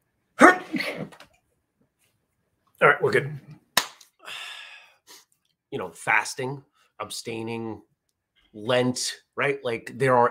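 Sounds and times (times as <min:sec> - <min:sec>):
sneeze: 0:00.4 - 0:01.2
speech: 0:02.8 - 0:03.6, 0:05.7 - 0:07.9, 0:08.5 - 0:10.2.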